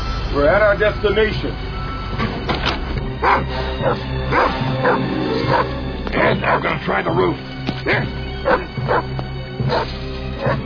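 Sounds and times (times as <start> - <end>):
speech: 0.4 - 2.4, 3.2 - 10.6
guard dogs barking: 3.2 - 6.8, 7.7 - 10.6.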